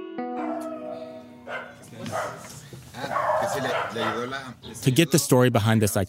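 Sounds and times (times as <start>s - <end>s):
dogs howling: 0.4s - 4.5s
speech: 2.2s - 6.0s.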